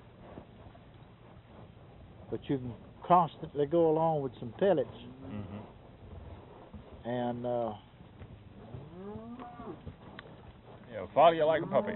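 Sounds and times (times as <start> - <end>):
steady noisy low background: 0.0 - 11.9
speech: 2.3 - 5.5, 7.1 - 7.9, 11.0 - 11.9
cow from a bunch of cattle mooing: 5.1 - 5.7, 8.7 - 9.8, 11.5 - 11.9.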